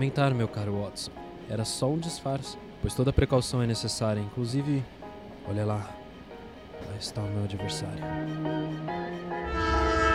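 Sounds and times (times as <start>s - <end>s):
speech: 0.0s - 6.0s, 6.8s - 9.8s
train horn at a railway station: 8.2s - 10.1s.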